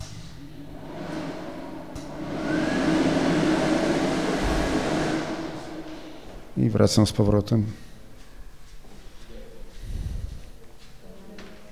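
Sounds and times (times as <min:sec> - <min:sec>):
hair dryer running: 0:00.4 - 0:06.7
speech: 0:06.6 - 0:07.9.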